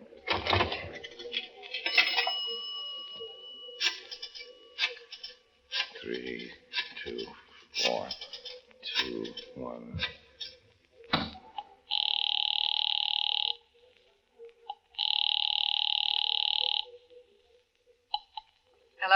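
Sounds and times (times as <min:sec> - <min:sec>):
voices talking: 0:00.0 - 0:18.1, 0:18.8 - 0:19.1
telephone ring over the line from a drugstore phone: 0:00.3 - 0:06.0, 0:11.9 - 0:13.6, 0:15.0 - 0:17.0.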